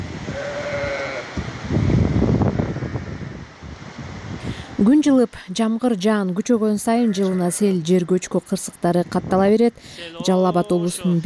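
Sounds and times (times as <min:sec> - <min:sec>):
wind noise: 0:00.0 - 0:04.9, 0:08.7 - 0:11.2
sheep bleating in a yard during a flood: 0:00.3 - 0:01.3, 0:10.0 - 0:11.2
speech: 0:04.8 - 0:11.2.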